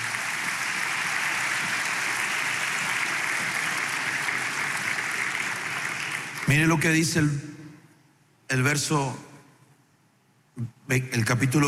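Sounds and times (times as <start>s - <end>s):
audience clapping hands: 0.0s - 7.1s
speech: 6.5s - 7.5s, 8.5s - 9.3s, 10.6s - 11.6s.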